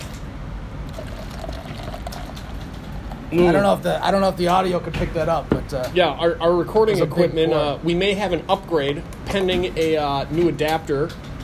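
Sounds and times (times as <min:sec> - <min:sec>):
drink poured from a large bottle into a glass: 0:00.9 - 0:03.7
speech: 0:03.3 - 0:11.3.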